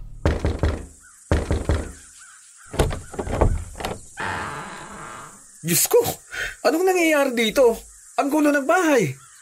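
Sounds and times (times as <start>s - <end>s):
knocking on a door: 0.2s - 2.0s, 2.7s - 4.0s
speech: 5.6s - 9.2s.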